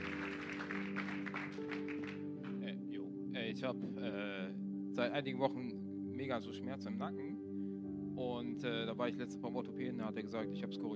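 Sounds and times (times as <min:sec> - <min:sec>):
crowd applauding: 0:00.0 - 0:02.6
sustained low musical tones: 0:00.0 - 0:10.9
speech: 0:03.5 - 0:07.3, 0:08.2 - 0:10.9.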